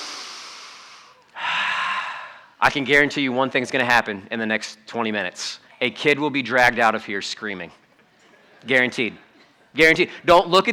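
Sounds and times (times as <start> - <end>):
church congregation taking a deep breath together: 0.0 - 2.6
speech: 2.6 - 7.8, 8.6 - 9.2, 9.8 - 10.7.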